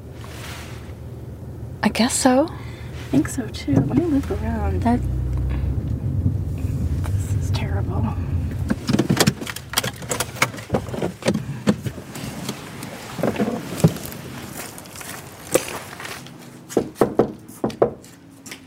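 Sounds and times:
low engine-like rumble: 0.0 - 16.7
speech: 1.8 - 5.2
knocking on a house door: 16.9 - 18.0.

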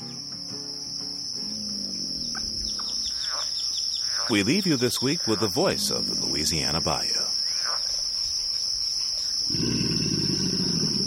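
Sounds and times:
insect and frog chorus in a bayou: 0.0 - 11.0
alligator grunting: 1.4 - 3.4, 5.2 - 6.8, 9.5 - 11.0
speech: 4.3 - 7.3.

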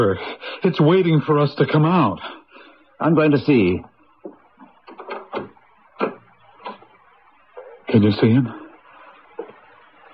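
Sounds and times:
speech: 0.0 - 2.4, 3.0 - 4.4, 7.9 - 8.6
wooden door being opened with clunks and creaking scrapes: 4.9 - 6.2.

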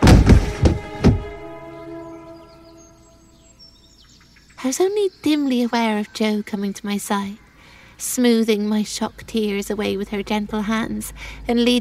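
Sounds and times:
heavy body falling onto wooden floorboards: 0.0 - 1.4
speech: 4.7 - 7.4, 8.0 - 11.7.

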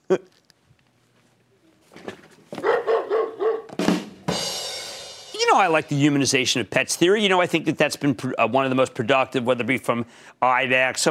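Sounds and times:
speech: 0.1 - 0.3, 5.6 - 11.0
dog barking: 2.6 - 3.7.

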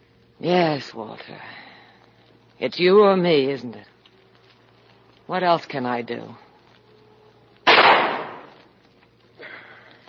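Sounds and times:
speech: 0.4 - 1.6, 2.6 - 3.9, 5.3 - 6.4
gunshot with tail: 7.7 - 8.5.

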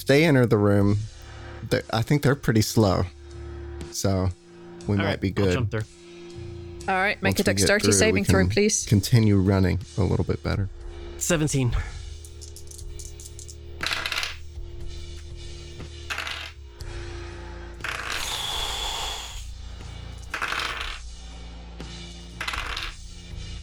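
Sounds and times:
speech: 0.0 - 3.2, 4.0 - 6.0, 6.9 - 12.0
many dice rolling across a hard table: 12.3 - 14.5, 15.8 - 16.6, 17.8 - 18.5, 20.2 - 21.1, 22.4 - 23.1.

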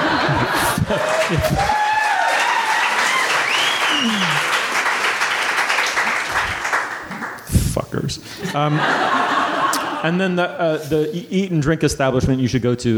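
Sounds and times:
laughter: 0.0 - 1.9, 8.5 - 10.3
audience applause: 0.0 - 7.4
speech: 0.9 - 1.8, 8.0 - 9.2, 10.0 - 12.9
cheers: 0.9 - 4.7
whistles: 3.3 - 4.4.

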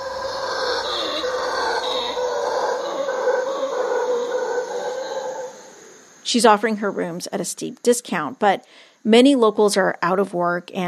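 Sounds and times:
howler monkeys calling at night: 0.0 - 6.2
speech: 6.3 - 10.8.

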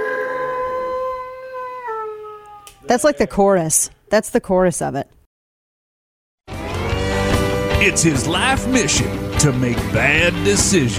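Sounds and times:
person imitating a werewolf howl: 0.0 - 3.0
speech: 2.9 - 5.2, 7.8 - 10.9.

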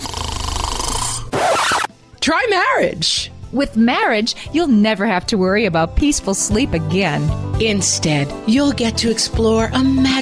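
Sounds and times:
loud snoring: 0.0 - 1.9
speech: 2.2 - 10.2.

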